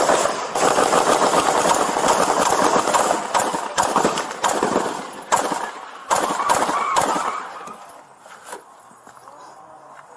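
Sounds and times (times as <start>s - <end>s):
AK-47 rifle gunfire aimed at police officers: 0.0s - 7.5s.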